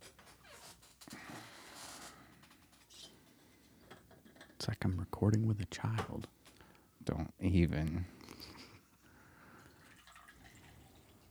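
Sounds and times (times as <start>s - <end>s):
speech: 4.8s - 6.4s, 7.1s - 8.2s
green tea pouring or slurping: 9.6s - 11.2s.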